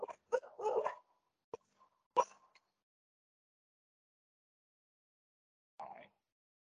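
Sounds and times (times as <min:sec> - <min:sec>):
dogs barking: 0:00.0 - 0:01.0.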